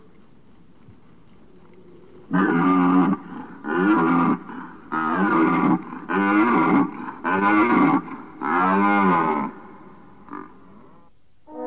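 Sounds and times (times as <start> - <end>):
red deer roaring: 2.3 - 9.6, 10.2 - 10.7.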